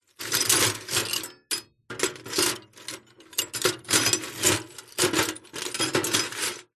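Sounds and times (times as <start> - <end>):
broken glass pieces rummaged in a metal container: 0.2 - 6.7.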